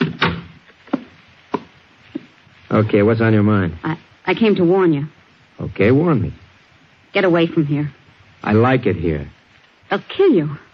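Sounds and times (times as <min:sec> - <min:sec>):
wooden door swinging shut with a thud: 0:00.0 - 0:00.5
speech: 0:02.7 - 0:06.4, 0:07.1 - 0:10.6.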